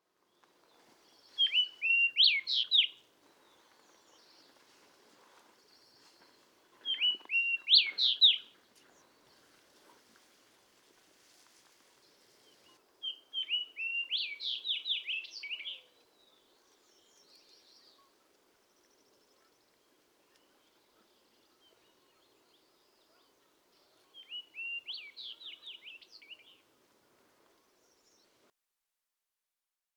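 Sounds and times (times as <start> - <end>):
fox sparrow Passerella iliaca: 1.3 - 4.6, 5.8 - 9.1, 12.6 - 16.0, 20.3 - 26.6.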